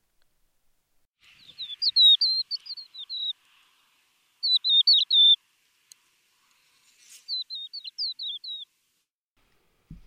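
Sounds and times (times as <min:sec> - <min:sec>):
crested lark singing fluty warbling whistles: 0:01.2 - 0:03.5, 0:04.4 - 0:05.4, 0:07.2 - 0:08.7.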